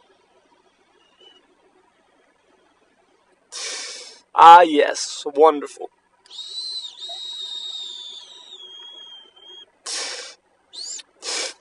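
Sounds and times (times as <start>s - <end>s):
breathy hissing bursts: 3.5s - 4.2s, 9.8s - 11.6s
speech: 4.4s - 6.0s
thin high-pitched whistle of a dab pen: 6.3s - 9.7s, 10.8s - 11.1s.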